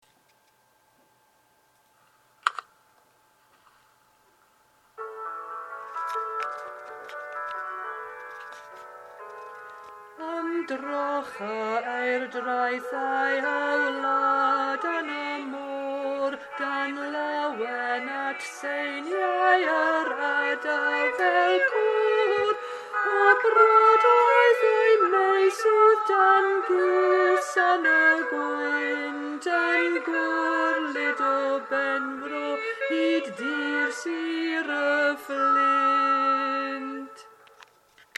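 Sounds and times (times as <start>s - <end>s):
alto duet singing a verse: 10.2s - 37.3s.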